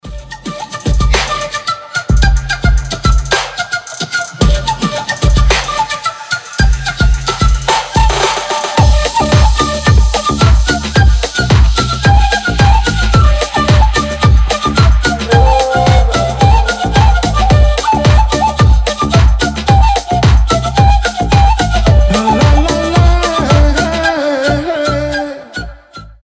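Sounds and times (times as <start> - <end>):
ethnic flute: 0.0 - 26.2.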